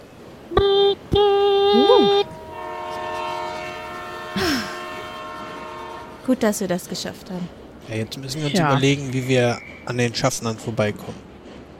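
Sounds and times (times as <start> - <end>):
steady humming tone of a train pulling away: 0.0 - 6.7
train horn blasts: 0.6 - 6.6
speech: 6.3 - 11.2.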